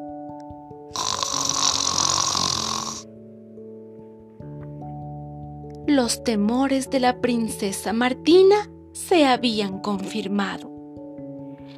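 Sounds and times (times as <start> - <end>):
steady soft musical backing: 0.0 - 11.7
loud drawn-out snore: 0.9 - 3.1
speech: 5.9 - 10.7.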